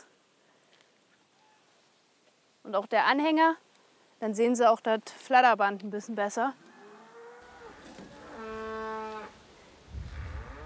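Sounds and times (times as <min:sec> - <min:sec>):
speech: 0:02.7 - 0:03.6, 0:04.2 - 0:06.6
cow mooing while cattle are herded along a path: 0:06.7 - 0:09.4, 0:10.2 - 0:10.6.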